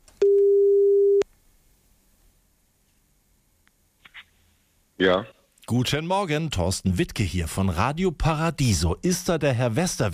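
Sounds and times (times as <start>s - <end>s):
telephone ringing tone while a call connects: 0.2s - 1.2s
speech: 5.0s - 10.1s.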